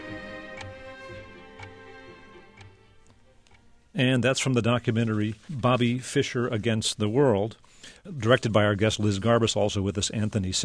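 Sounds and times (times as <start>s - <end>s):
soft sustained musical drone: 0.0s - 4.0s
chess clock ticking during a chess game: 0.0s - 5.0s
speech: 4.0s - 10.6s.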